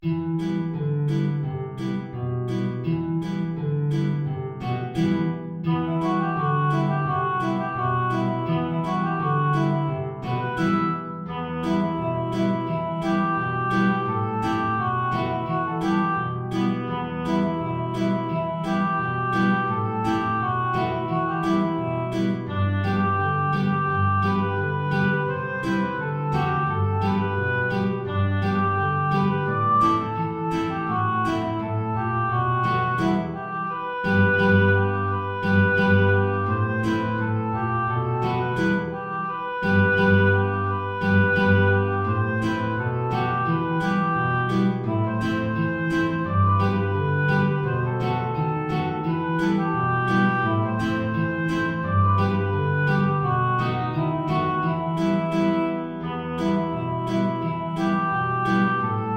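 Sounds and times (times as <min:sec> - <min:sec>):
low guitar: 0:00.0 - 0:59.1
oboe: 0:01.1 - 0:59.1.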